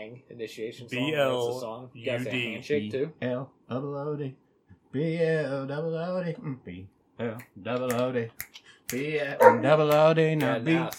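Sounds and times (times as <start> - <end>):
speech: 0.0 - 10.9
dog howling in a wavering singing tone: 9.4 - 9.7.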